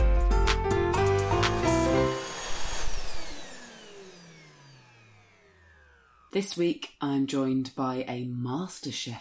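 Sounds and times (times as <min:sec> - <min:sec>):
vacuum cleaner running: 0:00.4 - 0:06.7
speech: 0:06.4 - 0:09.1.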